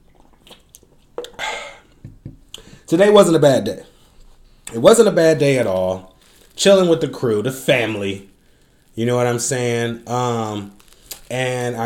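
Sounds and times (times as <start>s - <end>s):
person sipping a michelada drink: 0.0s - 2.7s, 10.7s - 11.3s
soft wet mouth clicks: 0.0s - 2.7s
speech: 2.9s - 3.9s, 4.7s - 8.3s, 9.0s - 11.8s.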